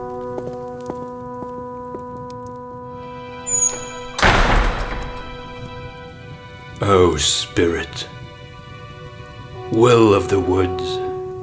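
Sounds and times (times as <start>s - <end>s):
heavy door creaking scrape: 3.4s - 6.2s
speech: 6.8s - 8.1s, 9.8s - 11.0s.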